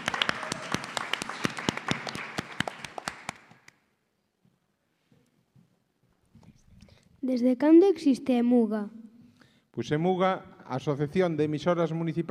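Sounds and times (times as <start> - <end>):
audience applause: 0.0 - 3.7
speech: 7.2 - 9.0, 9.8 - 12.2.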